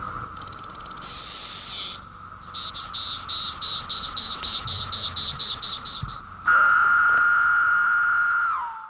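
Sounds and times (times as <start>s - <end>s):
male insect courtship song as a steady lower continuous whine: 0.0s - 8.8s
male insect courtship song as rhythmic pulsing chirps: 0.3s - 6.3s
male insect courtship song as a high trilling buzz: 0.4s - 7.5s.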